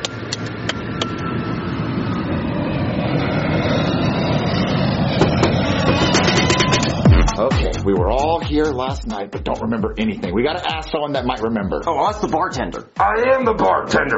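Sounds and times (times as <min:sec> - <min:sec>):
airplane in flight engine roar: 0:00.0 - 0:14.1
speech: 0:08.0 - 0:14.1.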